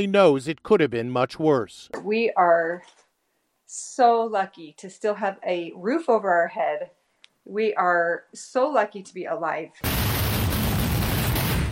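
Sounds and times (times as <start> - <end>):
speech: 0.0 - 3.0, 3.7 - 10.1
rockets flying in every direction: 9.8 - 11.7
truckload of fireworks exploding in a neighborhood: 9.8 - 11.7.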